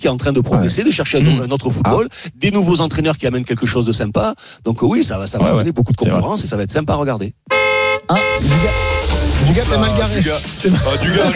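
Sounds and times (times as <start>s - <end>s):
speech: 0.0s - 11.3s
car horn honking: 7.5s - 10.1s
laughter: 8.4s - 11.3s.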